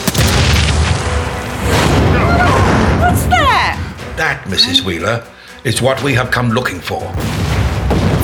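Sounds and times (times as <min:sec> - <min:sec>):
incendiary bombs exploding after being dropped: 0:00.1 - 0:03.3, 0:07.1 - 0:08.2
speech: 0:04.5 - 0:07.6.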